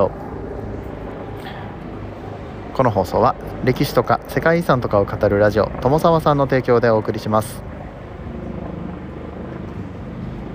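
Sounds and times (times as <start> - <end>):
speech: 0.0 - 0.2, 2.8 - 7.8
helicopter flying overhead with rotor chop: 0.0 - 10.5.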